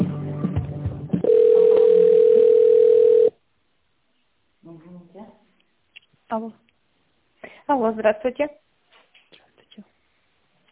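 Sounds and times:
telephone line tone while a call is transferred: 1.2s - 3.3s
speech: 6.4s - 6.6s, 7.8s - 8.6s.

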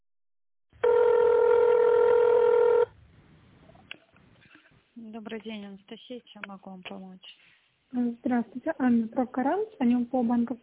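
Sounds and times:
steady electronic telephone tone on an office phone line: 0.8s - 3.0s
speech: 5.3s - 10.6s.

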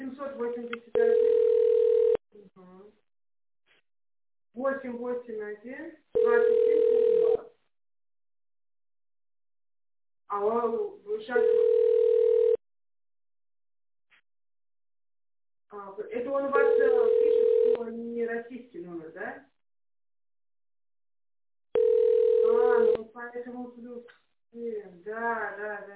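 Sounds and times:
recorded voice announcement of call forwarding: 0.0s - 1.3s, 4.6s - 7.4s, 10.3s - 11.7s, 15.7s - 19.5s, 22.4s - 25.9s
speech: 0.2s - 1.0s, 4.6s - 7.1s, 10.3s - 11.8s, 23.2s - 25.9s
telephone ringback tone while a call is forwarded: 1.0s - 2.2s, 6.2s - 7.5s, 11.4s - 12.6s, 16.6s - 17.8s, 21.8s - 23.0s.

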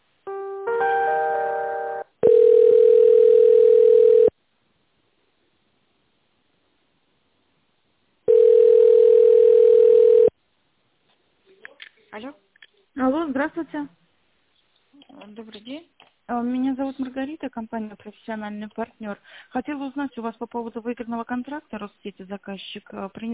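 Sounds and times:
chord-like telephone tone during an office call transfer: 0.3s - 4.3s, 8.3s - 10.3s
steady telephone beeps during an office call transfer: 2.2s - 4.3s, 8.3s - 10.3s
speech: 16.9s - 23.3s.

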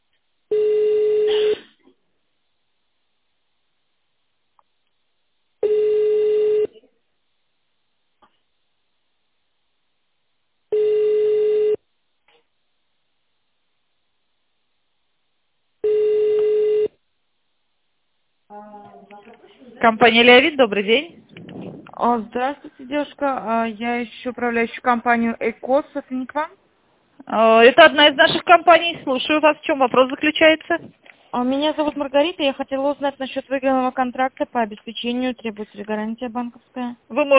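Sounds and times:
telephone ringback tone during call transfer to a secretary: 0.5s - 1.6s, 5.6s - 6.7s, 10.7s - 11.8s, 15.8s - 16.9s
speech: 19.5s - 21.3s, 22.0s - 26.6s, 27.3s - 37.3s.

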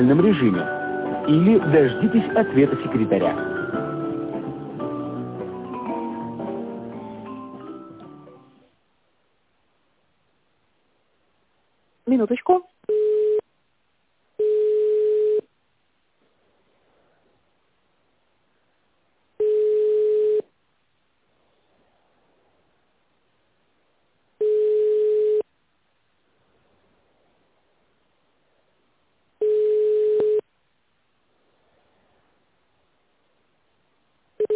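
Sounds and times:
speech: 0.0s - 3.6s
quiet hiss: 0.0s - 34.5s
telephone ringing tone on an unanswered call: 12.9s - 13.4s, 14.4s - 15.5s, 19.4s - 20.5s, 24.4s - 25.5s, 29.4s - 30.4s, 34.4s - 34.5s.

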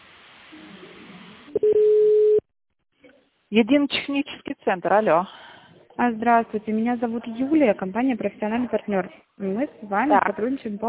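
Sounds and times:
steady low telephone line tone as a call is transferred: 1.6s - 2.4s
speech: 3.5s - 5.4s, 6.0s - 10.8s.

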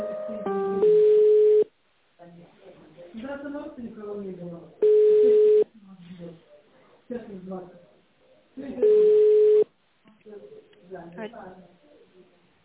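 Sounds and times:
telephone line tones while a call is being transferred: 0.5s - 1.7s, 8.9s - 9.7s.

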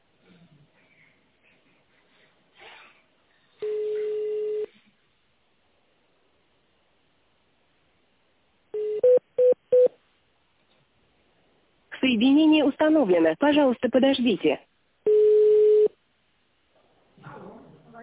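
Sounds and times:
long steady telephone tone on a company's phone line: 3.6s - 4.8s, 8.7s - 10.0s, 15.0s - 16.0s
speech: 12.0s - 14.7s
short telephone tones dialing an internal extension: 15.1s - 15.9s.

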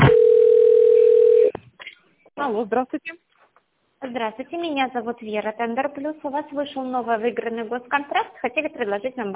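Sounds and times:
steady single-pitched telephone line tone: 0.1s - 1.5s
speech: 2.6s - 3.3s, 4.0s - 9.3s.

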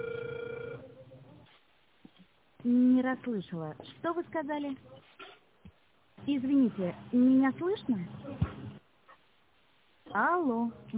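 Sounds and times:
ringback tone of an outgoing telephone call: 0.0s - 0.8s
speech: 2.6s - 5.0s, 6.3s - 8.5s, 10.1s - 10.9s.

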